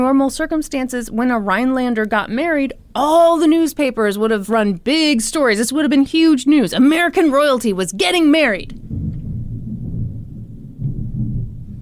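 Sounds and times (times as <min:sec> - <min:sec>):
speech: 0:00.0 - 0:08.8
thunder rumbling: 0:08.3 - 0:11.8.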